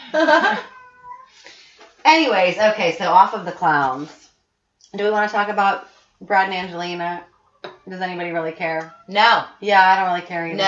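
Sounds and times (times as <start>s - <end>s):
speech: 0.1s - 0.7s, 2.0s - 4.2s, 4.9s - 7.3s, 7.9s - 10.6s
cat in heat yowling: 0.4s - 1.4s.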